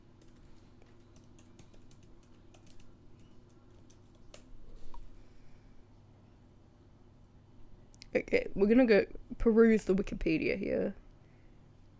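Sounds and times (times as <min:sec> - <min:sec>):
typing on a computer keyboard: 0:00.2 - 0:04.5
speech: 0:08.2 - 0:11.0.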